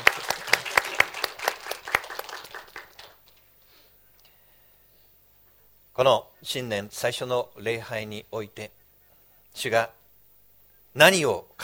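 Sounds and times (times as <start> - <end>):
audience applause: 0.0 - 3.5
speech: 6.0 - 8.8, 9.6 - 10.0, 10.9 - 11.6.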